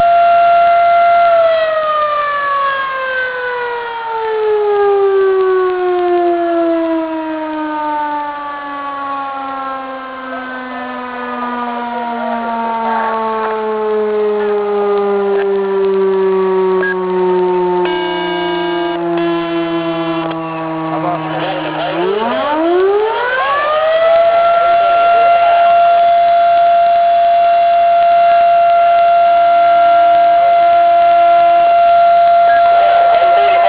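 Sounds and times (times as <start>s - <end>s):
siren alert down tone: 0.0s - 33.6s
laughter: 20.6s - 22.8s, 24.6s - 26.2s, 32.5s - 33.6s.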